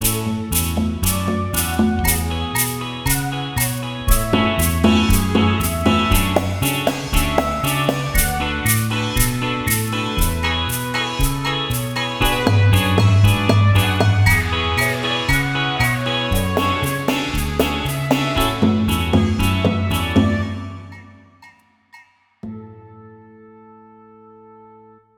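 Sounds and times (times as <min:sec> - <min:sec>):
island drumming: 0:00.0 - 0:22.4.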